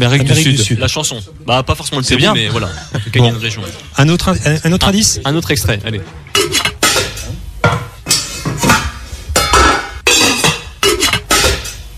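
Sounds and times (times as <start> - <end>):
speech: 0.0 - 6.6
metallic clattering of pots and pans in a kitchen: 6.4 - 11.9.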